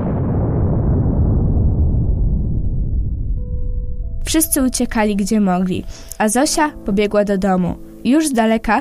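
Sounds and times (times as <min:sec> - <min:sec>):
bomb explosion during an air raid by low-flying attack aircraft: 0:00.0 - 0:05.4
speech: 0:04.3 - 0:08.8.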